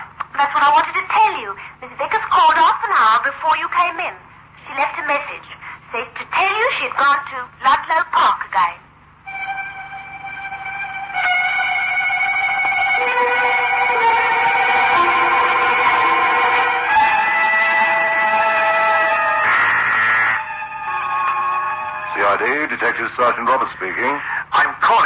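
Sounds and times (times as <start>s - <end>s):
speech: 0.4s - 8.8s, 22.4s - 25.0s
ambulance siren blaring: 9.3s - 23.3s.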